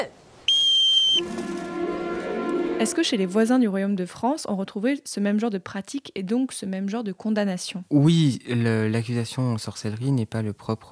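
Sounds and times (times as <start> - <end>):
speech: 0.0 - 0.2, 1.2 - 1.5, 2.8 - 10.8
loud sharp whistle blast signalling the start: 0.5 - 3.4.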